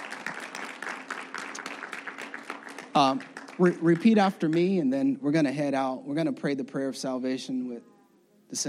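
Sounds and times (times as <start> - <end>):
church congregation applauding: 0.0 - 4.9
speech: 3.0 - 7.9.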